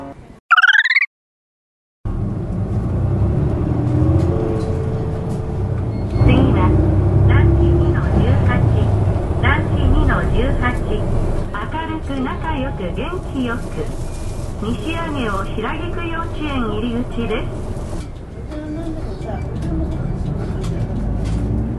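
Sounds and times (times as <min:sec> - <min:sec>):
short electronic chime: 0:00.5 - 0:01.1
low engine rumble of a moving city bus heard from inside: 0:02.1 - 0:21.7.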